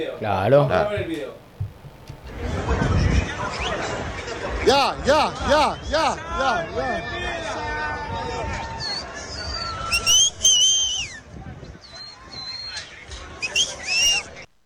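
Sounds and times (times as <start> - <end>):
speech: 0.0 - 1.4, 2.7 - 7.3
crowd chatter and bustle at a stadium entrance: 0.0 - 14.5
football fan whistling a lively cheerful tune: 8.8 - 11.2, 13.4 - 14.3.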